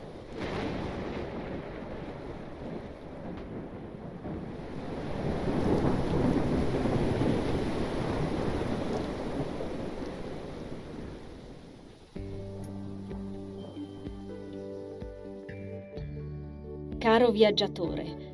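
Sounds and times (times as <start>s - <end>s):
deep rumbling thunder: 0.0s - 15.5s
steady rain: 0.0s - 15.6s
crashing waves: 4.2s - 11.9s
music: 12.2s - 18.3s
speech: 17.3s - 18.3s.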